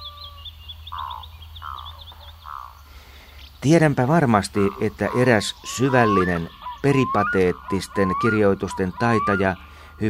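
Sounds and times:
chorus of rapid high chirping trills: 0:00.0 - 0:10.0
frogs croaking: 0:00.0 - 0:10.0
speech: 0:03.6 - 0:10.0.

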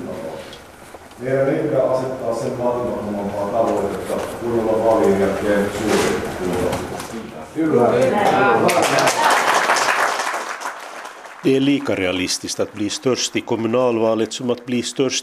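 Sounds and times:
speech: 0:01.2 - 0:06.9, 0:07.5 - 0:09.2, 0:11.4 - 0:15.2
crowd applause at a party meeting: 0:08.3 - 0:14.1.

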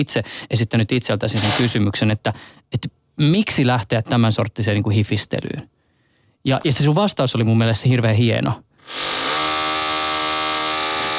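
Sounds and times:
speech: 0:00.0 - 0:05.8, 0:06.4 - 0:09.3
drilling: 0:01.4 - 0:01.7, 0:08.8 - 0:11.1.

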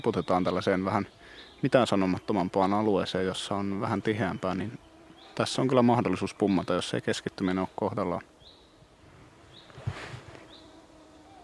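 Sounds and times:
speech: 0:00.0 - 0:08.3
small mosquitoes whining: 0:00.0 - 0:11.4
rustling: 0:09.0 - 0:10.7.

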